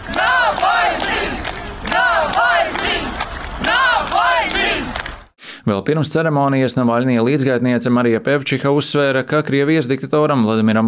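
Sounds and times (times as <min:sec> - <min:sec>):
large crowd chanting a slogan in unison: 0:00.0 - 0:05.3
scattered clapping: 0:00.0 - 0:05.3
speech: 0:05.6 - 0:10.8.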